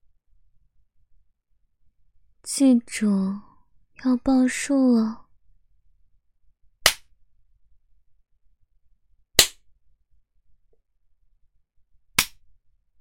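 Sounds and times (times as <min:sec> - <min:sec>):
speech: 0:02.6 - 0:05.2
whip lashes cracking as punishment: 0:09.4 - 0:09.6.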